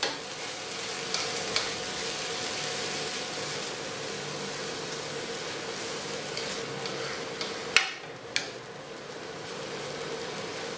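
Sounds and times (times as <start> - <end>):
keema minced meat frying with caramelized onion in a pan: 0.0 - 10.7
stirring scrape: 5.7 - 7.8.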